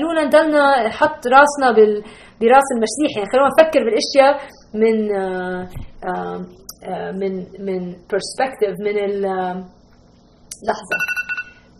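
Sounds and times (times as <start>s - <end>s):
speech: 0.2s - 9.8s, 10.6s - 11.2s
short electronic timer bell tone: 10.9s - 11.7s.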